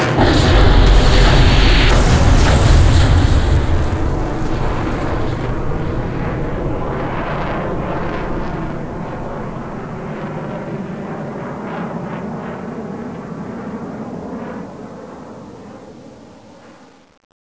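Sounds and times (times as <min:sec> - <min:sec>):
airstrike damage explosion: 0:00.1 - 0:10.8.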